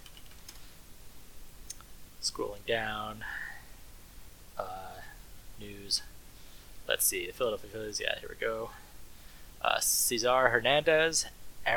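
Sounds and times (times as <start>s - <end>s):
typing on a mechanical keyboard: 0.0s - 0.6s
speech: 2.2s - 3.4s, 5.6s - 6.1s, 6.9s - 8.8s, 9.6s - 11.7s.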